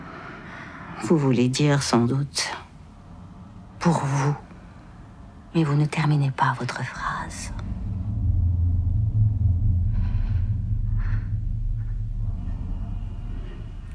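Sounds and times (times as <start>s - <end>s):
speech: 1.0s - 2.7s, 3.8s - 4.4s, 5.5s - 7.6s
deep rumble of surf and sea waves: 7.3s - 13.9s.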